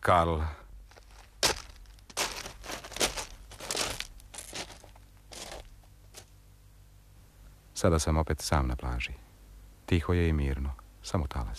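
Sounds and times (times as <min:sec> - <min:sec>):
speech: 0:00.0 - 0:00.6, 0:07.8 - 0:09.2, 0:09.9 - 0:11.5
man's footsteps crunching on fine gravel: 0:00.8 - 0:06.3.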